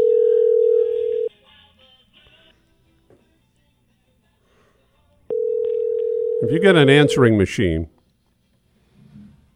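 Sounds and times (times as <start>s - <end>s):
telephone dial tone while a number is dialed: 0.0s - 1.3s, 5.3s - 6.6s
speech: 6.4s - 8.0s.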